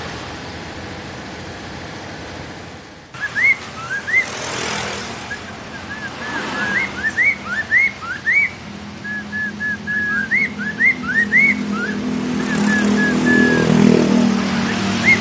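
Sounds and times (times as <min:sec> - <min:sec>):
steady traffic rumble: 0:00.0 - 0:15.1
Hwamei song of clear upslurred whistled notes: 0:03.2 - 0:15.1.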